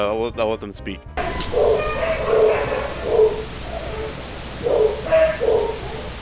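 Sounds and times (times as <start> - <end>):
speech: 0.0 - 2.5
dog barking and yipping: 1.2 - 6.1
steady hiss: 1.2 - 6.1.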